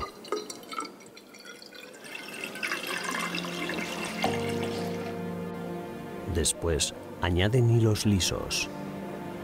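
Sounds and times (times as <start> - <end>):
water pouring and splashing into a dye cylinder: 0.0 - 5.2
speech: 6.4 - 8.8.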